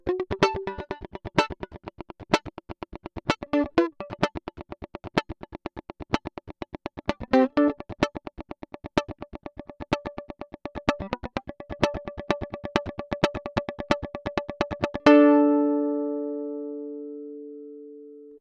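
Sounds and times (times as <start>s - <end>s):
mandolin played percussively through pickup: 0.0s - 5.3s, 8.8s - 17.0s.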